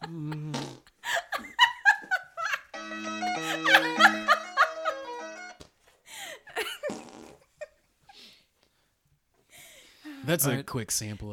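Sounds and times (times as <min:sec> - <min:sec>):
people laughing: 0:01.2 - 0:05.4
wet squelchy armpit farts: 0:06.9 - 0:07.4
speech: 0:10.3 - 0:11.3.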